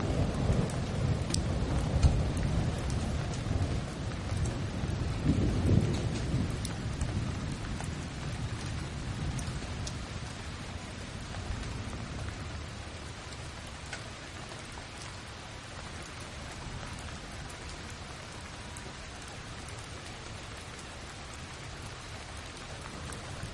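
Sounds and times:
soft low deep thunder rumbling: 0.0s - 13.6s
steady rain hissing: 0.0s - 23.5s.

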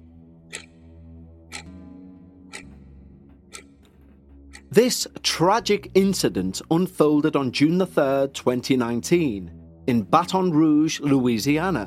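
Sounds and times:
low sustained musical drone: 0.0s - 11.8s
clock ticking: 0.5s - 6.0s
speech: 4.8s - 11.8s.

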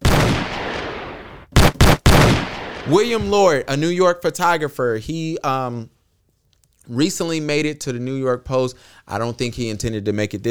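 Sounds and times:
loud gunshot sound effects: 0.0s - 3.6s
speech: 2.9s - 6.0s, 6.9s - 10.4s.

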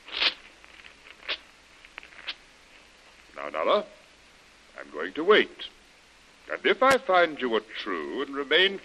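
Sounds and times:
written paper being torn up: 0.0s - 1.4s
paper crinkling: 0.0s - 3.3s
speech: 3.5s - 4.0s, 4.8s - 5.8s, 6.5s - 8.8s.

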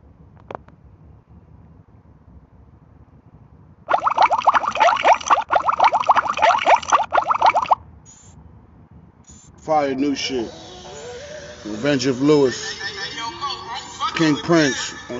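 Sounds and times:
bubbling water churning: 3.9s - 7.8s
speech: 9.7s - 10.7s, 11.6s - 12.9s, 14.2s - 15.1s.

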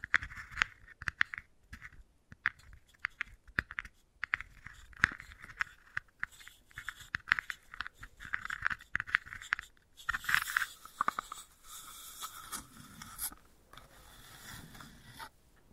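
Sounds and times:
wooden balls clicking and rolling: 0.0s - 11.5s
scratchy scraping: 4.4s - 15.4s.

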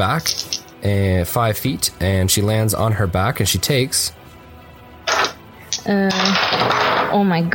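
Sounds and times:
handful of dice clattering across a hard tabletop in a tabletop game: 0.0s - 0.8s, 5.1s - 7.1s
speech: 0.0s - 4.2s, 5.8s - 7.5s.

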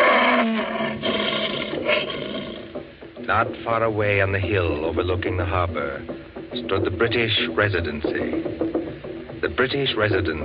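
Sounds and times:
lion roaring: 0.0s - 2.8s
speech: 3.3s - 8.7s, 9.4s - 10.4s.

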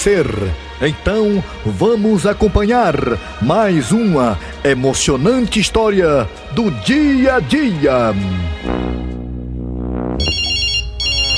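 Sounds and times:
speech: 0.0s - 9.1s
steady low hum: 8.1s - 11.3s
telephone ringing with bright electronic trilling ringtone: 10.2s - 11.3s.

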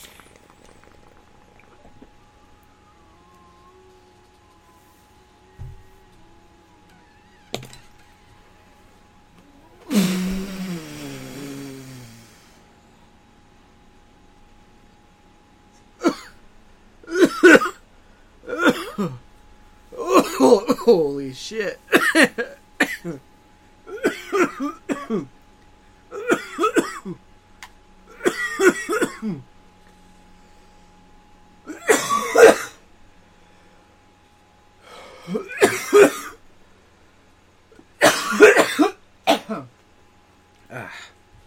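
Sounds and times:
person coughing harshly: 9.9s - 12.0s, 16.0s - 16.4s, 17.1s - 17.8s, 18.5s - 19.2s, 20.0s - 20.9s, 21.9s - 23.2s, 23.9s - 25.3s, 26.1s - 27.2s, 28.2s - 29.4s, 31.7s - 32.8s, 35.1s - 36.4s, 38.0s - 39.7s
speech: 19.0s - 19.2s, 20.9s - 22.4s, 23.0s - 23.3s
breathing: 34.8s - 35.4s.

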